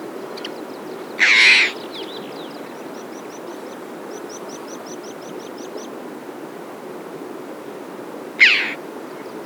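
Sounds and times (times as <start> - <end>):
red-billed chough rasping calls: 8.4 - 8.8.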